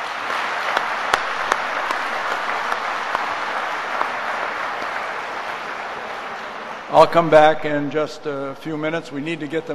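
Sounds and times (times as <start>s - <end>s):
sustained applause from a sizable audience for a musical quintet: 0.0s - 7.2s
speech: 6.9s - 9.7s.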